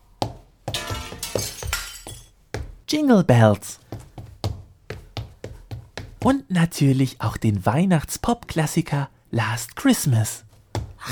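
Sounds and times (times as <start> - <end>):
lamp crashing and shattering with glassy smashes: 0.7 - 2.3
speech: 2.9 - 3.8, 6.2 - 11.1.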